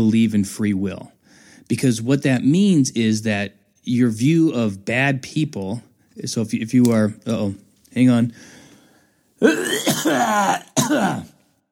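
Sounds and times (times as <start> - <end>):
speech: 0.0 - 8.6, 9.4 - 11.3
throat clearing: 9.4 - 11.4.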